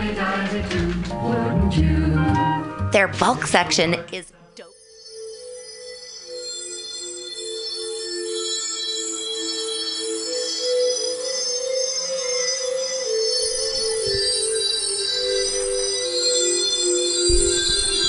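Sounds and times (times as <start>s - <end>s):
speech: 0.1s - 4.4s
bell-like chimes: 4.7s - 18.0s
dreamy shimmering music with sustained layered tones: 4.7s - 18.0s.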